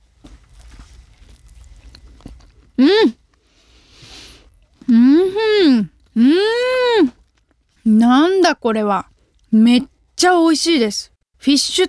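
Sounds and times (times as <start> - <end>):
person biting and chewing a fried fish snack with tartar sauce filling: 0.0 - 5.3, 5.9 - 7.9
speech: 2.8 - 3.2, 4.9 - 7.2, 7.9 - 11.8.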